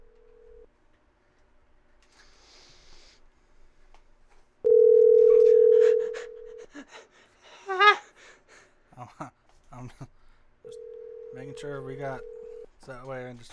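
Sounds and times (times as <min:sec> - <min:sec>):
telephone ringback tone on an outgoing call: 0:00.0 - 0:00.6, 0:04.7 - 0:06.6, 0:10.7 - 0:12.7
speech: 0:11.6 - 0:13.5.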